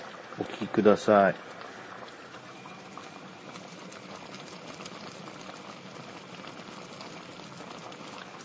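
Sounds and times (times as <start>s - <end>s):
pot of water boiling steadily on a rainy day: 0.0s - 8.4s
speech: 0.4s - 1.6s.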